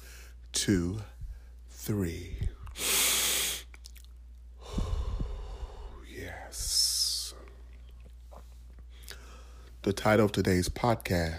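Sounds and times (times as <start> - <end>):
speech: 0.7 - 1.1, 1.8 - 2.9, 9.9 - 11.3
person breathing slowly and deeply during a counted breathing exercise: 2.5 - 3.8, 4.6 - 6.1, 8.9 - 9.8.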